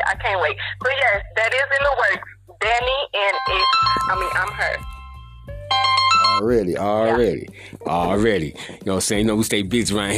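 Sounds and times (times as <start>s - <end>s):
speech: 0.1s - 4.9s, 5.7s - 10.1s
telephone ringing with a bright pulsing electronic tone: 3.2s - 6.5s.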